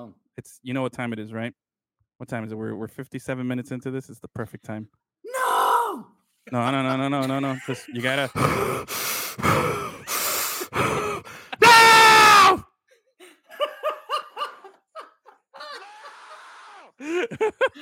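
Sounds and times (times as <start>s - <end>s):
speech: 0.0s - 1.6s, 2.2s - 5.4s, 6.5s - 9.9s
laughter: 6.5s - 12.2s, 13.2s - 17.8s
very heavy breathing: 8.1s - 11.6s
short sharp gasps and squeaky panting bursts: 8.2s - 11.6s.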